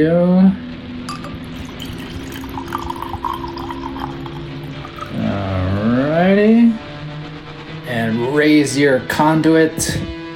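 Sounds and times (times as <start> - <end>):
speech: 0.0 - 0.6, 8.6 - 10.2
low hum: 0.8 - 8.4
liquid pouring into a vessel: 1.1 - 5.6.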